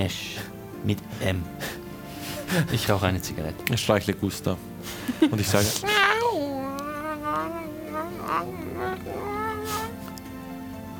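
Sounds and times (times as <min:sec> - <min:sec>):
speech: 0:00.0 - 0:01.8, 0:02.5 - 0:06.6, 0:07.3 - 0:09.4
person stroking a cat imitating cat meows: 0:05.8 - 0:10.0.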